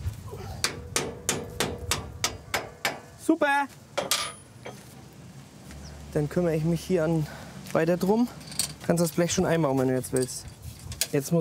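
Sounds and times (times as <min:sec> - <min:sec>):
hammer knocking a metal bolt into place on farm machinery: 0:00.6 - 0:03.1, 0:04.0 - 0:04.8
speech: 0:03.3 - 0:03.8, 0:06.1 - 0:11.4.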